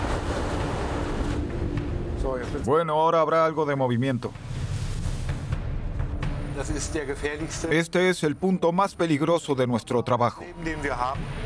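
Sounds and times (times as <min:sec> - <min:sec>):
stormy wind roaring over the North Sea off Emden, Germany: 0:00.0 - 0:02.2
North Sea waves crashing in a storm off Emden, Germany: 0:00.0 - 0:02.6, 0:03.5 - 0:06.6
speech: 0:02.3 - 0:04.5, 0:06.6 - 0:11.4.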